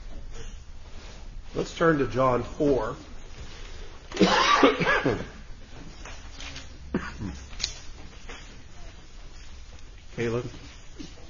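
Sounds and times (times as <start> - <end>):
speech: 1.5 - 3.1, 4.8 - 5.4, 10.2 - 10.7
person coughing: 4.1 - 5.4, 6.9 - 7.5.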